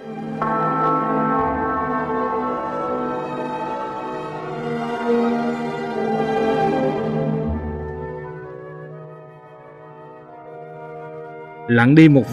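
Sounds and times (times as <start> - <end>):
church clock bell striking: 0.0 - 7.6
speech: 11.7 - 12.3.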